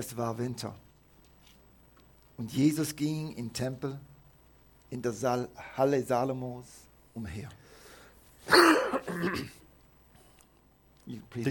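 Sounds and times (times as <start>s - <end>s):
speech: 0.0s - 0.9s, 2.4s - 4.1s, 4.9s - 7.7s, 8.5s - 9.6s, 11.1s - 11.4s
raspy cough or throat-clear: 8.5s - 9.6s.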